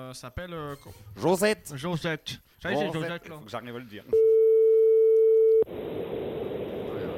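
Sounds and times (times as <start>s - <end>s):
speech: 0.1s - 4.3s, 5.7s - 6.2s
telephone line tone while calling a number: 4.2s - 5.7s.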